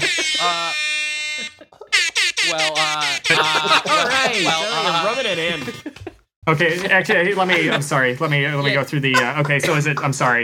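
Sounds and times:
laughter: 0.0 - 0.8, 1.4 - 9.8
loud flat quiz buzzer: 0.0 - 6.0
speech: 2.5 - 2.9, 3.7 - 10.4.

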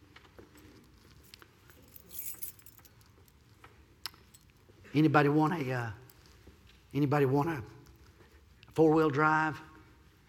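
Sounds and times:
keys jingling: 0.5 - 4.7
speech: 4.9 - 6.0, 6.9 - 7.8, 8.8 - 9.7.

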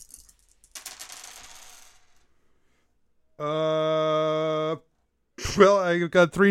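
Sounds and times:
dice clattering and rattling across a hard surface: 0.0 - 2.3
speech: 3.4 - 3.9, 5.5 - 6.4.

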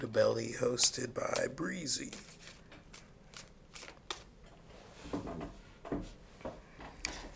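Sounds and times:
speech: 0.0 - 2.6
tarot card deck being shuffled: 1.2 - 4.4.

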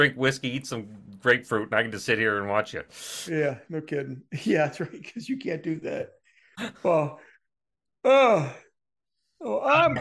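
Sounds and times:
speech: 0.0 - 7.3, 8.0 - 8.6, 9.4 - 9.9
person yawning: 8.1 - 8.7.

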